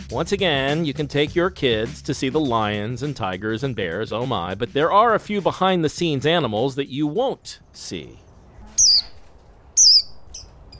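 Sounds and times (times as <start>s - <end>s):
speech: 0.1s - 8.2s
Indian white-eye songbird calling: 8.2s - 10.7s.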